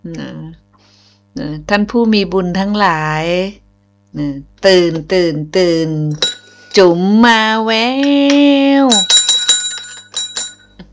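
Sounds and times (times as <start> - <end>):
speech: 0.0 - 0.7, 1.4 - 9.1
small bell ringing: 6.2 - 6.7, 8.8 - 10.9.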